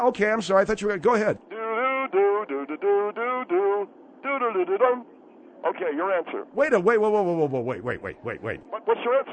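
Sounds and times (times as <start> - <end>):
speech: 0.0 - 1.5, 2.1 - 9.3
person humming a game show thinking tune: 1.5 - 4.7.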